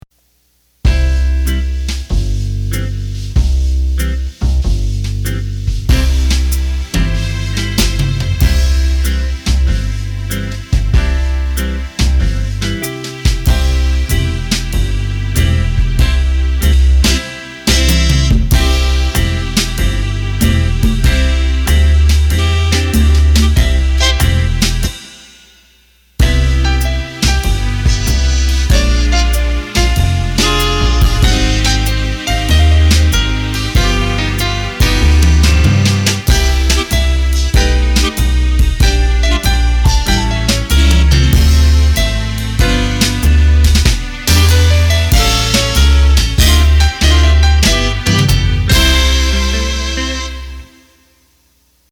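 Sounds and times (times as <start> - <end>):
ballad: 0.9 - 25.2, 26.2 - 50.9.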